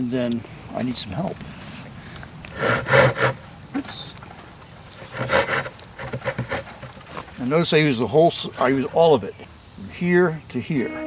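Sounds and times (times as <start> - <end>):
speech: 0.0 - 1.6, 7.4 - 11.0
hand saw cutting through wood during trail maintenance: 2.5 - 3.4, 5.0 - 7.4.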